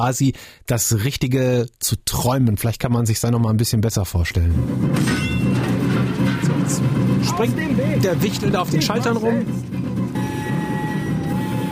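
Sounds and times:
speech: 0:00.0 - 0:05.4, 0:06.7 - 0:09.9
train mechanical rumbling: 0:05.6 - 0:11.7.

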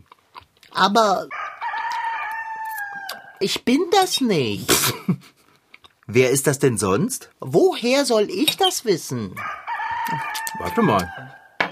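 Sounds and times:
speech: 0:00.8 - 0:01.4, 0:03.4 - 0:05.4, 0:06.1 - 0:11.4
rooster crowing in a backyard: 0:01.3 - 0:03.4, 0:09.4 - 0:11.6.

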